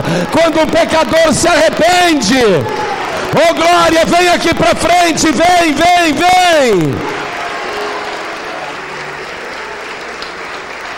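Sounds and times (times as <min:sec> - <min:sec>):
speech: 0:00.0 - 0:07.1
church audience clapping hands: 0:00.0 - 0:10.9.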